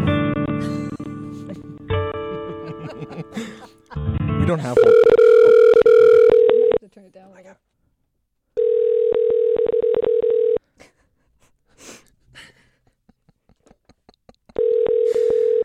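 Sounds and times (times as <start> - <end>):
laughter: 0.6 - 4.8, 12.3 - 15.3
faint breathing: 3.3 - 3.8, 11.6 - 12.9, 14.9 - 15.6
speech: 4.5 - 5.1
ringback tone on an outgoing telephone call: 4.8 - 6.8, 8.6 - 10.6, 14.6 - 15.6.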